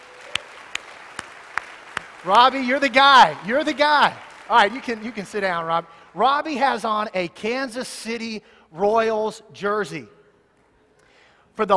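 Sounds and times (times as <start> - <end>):
sharp hand claps: 0.0 - 5.6
speech: 2.2 - 10.2, 11.6 - 11.7.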